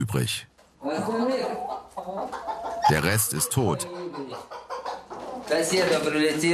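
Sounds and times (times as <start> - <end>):
speech: 0.1 - 4.6, 5.5 - 6.5
chickens clucking and squawking: 0.9 - 6.5.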